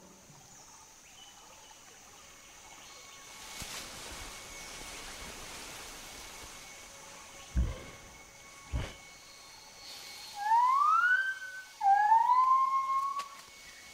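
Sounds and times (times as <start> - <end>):
dull low thumps: 7.5 - 9.0
gibbon rising whooping hoots: 10.4 - 13.2.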